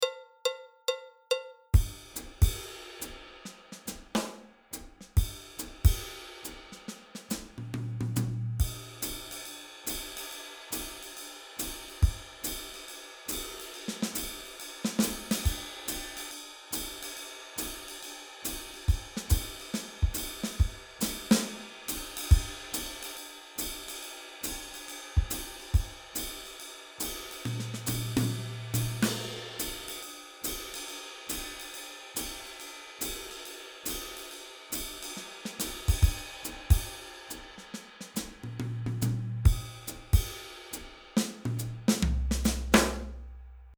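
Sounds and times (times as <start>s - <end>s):
jazzy beat: 1.8s - 9.2s, 18.9s - 23.0s, 25.2s - 26.2s, 27.4s - 29.7s, 35.2s - 43.7s
drums: 1.8s - 43.7s.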